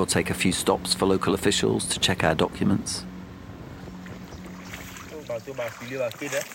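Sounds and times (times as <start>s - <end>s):
speech: 0.0s - 3.1s, 5.4s - 6.5s
boat motor on the Sanga River: 0.0s - 6.5s
water washing on the mud-brown Sanga River: 4.0s - 6.5s.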